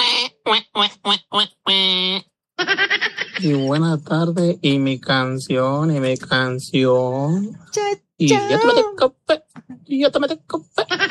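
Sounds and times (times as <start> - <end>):
person imitating duck quacks: 0.0 - 3.5, 8.3 - 9.1
speech: 0.5 - 0.9, 3.4 - 9.2, 9.9 - 10.9.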